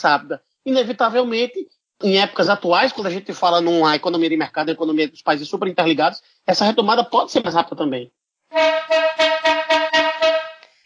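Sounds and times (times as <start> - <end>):
speech: 0.0 - 9.3
horn sound effect honking: 8.5 - 10.7.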